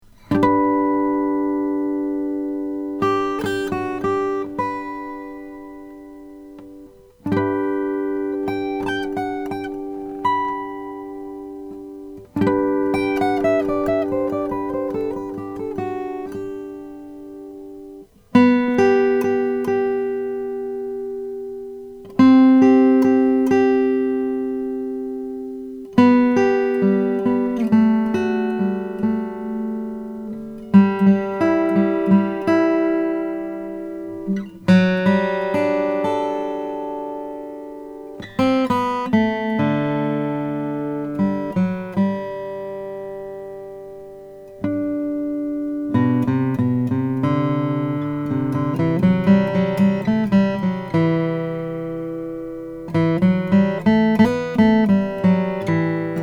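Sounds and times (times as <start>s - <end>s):
guitars: 0.0s - 56.2s.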